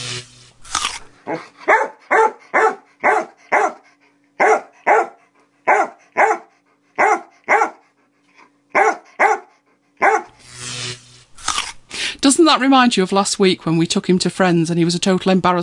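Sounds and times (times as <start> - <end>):
speech: 1.3 - 1.5, 12.3 - 15.6
dog barking: 1.3 - 3.8, 4.4 - 7.8, 8.7 - 10.4.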